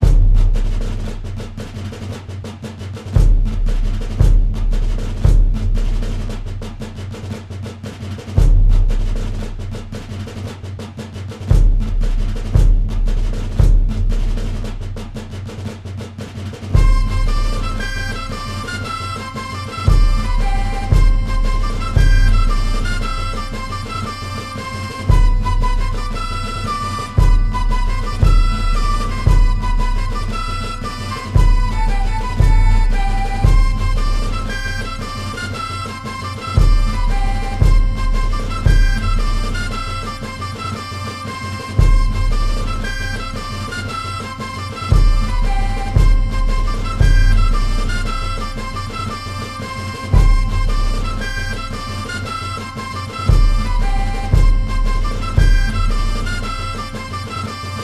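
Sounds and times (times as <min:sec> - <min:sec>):
snare drum on the march: 0:00.0 - 0:57.8
fife playing on the march: 0:16.7 - 0:57.8.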